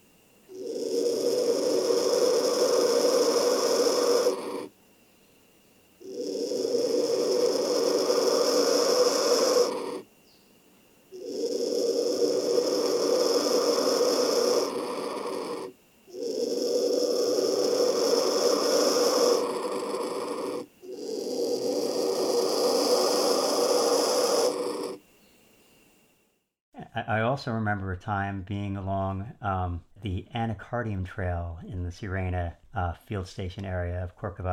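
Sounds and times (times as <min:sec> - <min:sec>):
young black vultures hissing and growling in a nest in rainforest tree buttress roots: 0:00.4 - 0:04.8, 0:06.0 - 0:10.1, 0:11.1 - 0:25.0
speech: 0:27.4 - 0:34.5.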